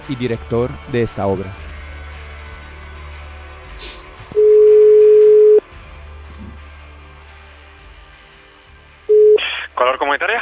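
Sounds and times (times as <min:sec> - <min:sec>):
speech: 0:00.1 - 0:01.7
telephone tone on an outgoing call: 0:04.4 - 0:05.6, 0:09.1 - 0:09.6.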